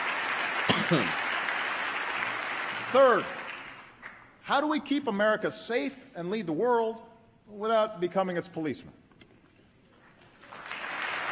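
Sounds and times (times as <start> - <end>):
crowd applause and cheering: 0.0 - 4.0, 10.3 - 11.3
speech: 0.9 - 1.2, 2.9 - 3.4, 4.5 - 9.0.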